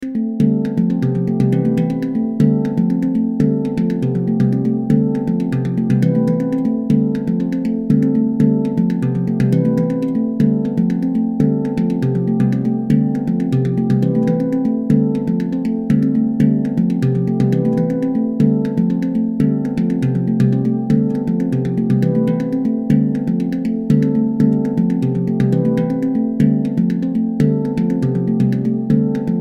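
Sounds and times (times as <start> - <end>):
handpan playing: 0.0 - 29.3.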